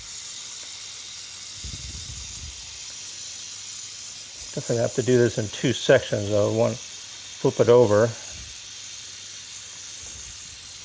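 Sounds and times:
loud broadband hiss: 0.0 - 10.8
melting material sputtering: 0.1 - 10.8
low-pitched crackling burst: 1.5 - 6.7
speech: 4.5 - 8.2.

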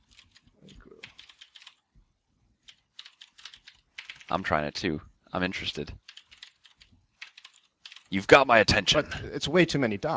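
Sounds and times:
rapid typing on a computer keyboard: 0.0 - 1.8, 2.6 - 4.3, 6.0 - 8.1
speech: 4.3 - 6.0, 8.1 - 10.1.

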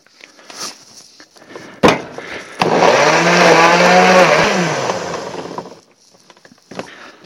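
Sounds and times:
blender blending marinade ingredients: 2.6 - 5.8.

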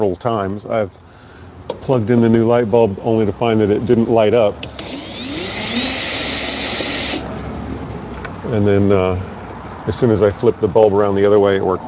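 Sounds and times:
speech: 0.0 - 5.4, 8.5 - 11.8
power drill or electric screwdriver whirring while removing screws from a Honda light assembly: 4.6 - 7.3.

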